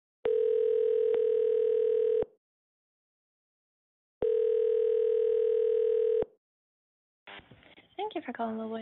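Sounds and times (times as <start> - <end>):
telephone ringback tone during call transfer: 0.3 - 2.4, 4.2 - 6.3
speech: 8.2 - 8.7.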